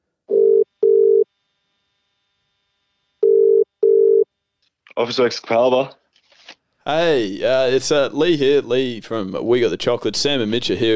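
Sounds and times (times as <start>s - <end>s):
telephone ringback tone while calling an office supplies shop: 0.3s - 1.3s, 3.2s - 4.3s
speech: 5.0s - 6.0s, 6.9s - 10.9s.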